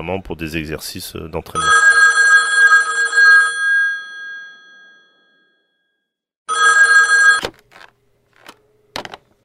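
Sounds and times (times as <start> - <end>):
speech: 0.0 - 2.0
old-fashioned telephone bell ringing: 1.6 - 7.5.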